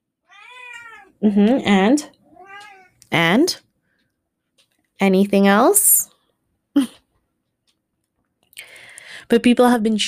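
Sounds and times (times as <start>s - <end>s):
cat meowing: 0.3s - 1.2s, 2.3s - 3.0s
speech: 1.2s - 2.2s, 3.1s - 3.6s, 5.0s - 6.1s, 9.3s - 10.0s.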